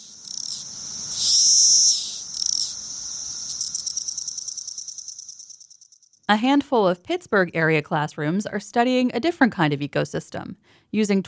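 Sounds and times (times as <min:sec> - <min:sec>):
17-year periodical cicadas buzzing chorus: 0:00.0 - 0:06.3
speech: 0:06.3 - 0:11.2.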